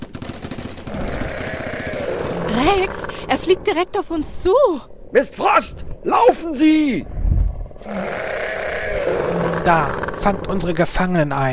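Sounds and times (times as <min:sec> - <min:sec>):
rapid gunfire aimed at a flying reptile: 0:00.0 - 0:03.1
speech: 0:02.6 - 0:07.2, 0:07.8 - 0:08.6, 0:09.6 - 0:11.5.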